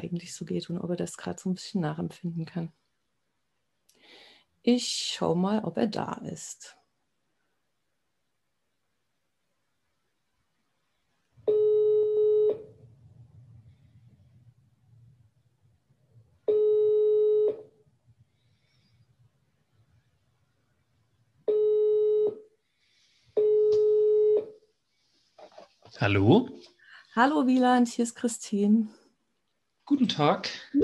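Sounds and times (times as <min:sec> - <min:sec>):
speech: 0:00.0 - 0:02.8, 0:04.6 - 0:06.8, 0:26.0 - 0:29.0, 0:29.9 - 0:30.8
telephone ringback tone while calling a colleague: 0:11.5 - 0:12.7, 0:16.5 - 0:17.7, 0:21.5 - 0:22.5, 0:23.4 - 0:24.6.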